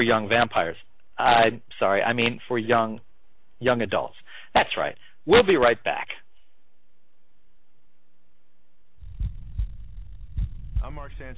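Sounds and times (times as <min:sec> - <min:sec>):
speech: 0:00.0 - 0:06.2, 0:10.8 - 0:11.3
human heartbeat: 0:09.0 - 0:11.3
steady low rumble: 0:09.0 - 0:11.3.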